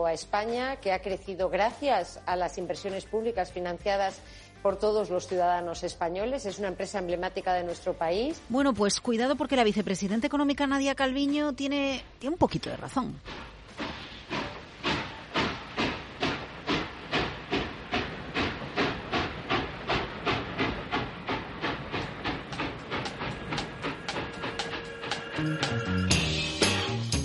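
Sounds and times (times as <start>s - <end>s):
speech: 0.0s - 13.5s
steam train chugging in rapid rhythmic puffs: 13.2s - 27.2s
hissing steam from train: 13.3s - 26.8s
sustained whistle-like tone: 24.4s - 26.4s.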